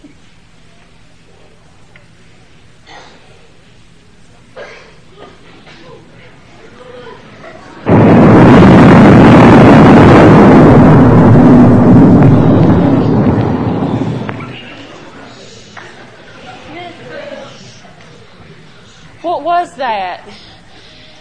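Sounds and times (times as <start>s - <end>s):
deep heavy rumble: 7.9s - 15.0s
sudden loud crack: 7.9s - 15.1s.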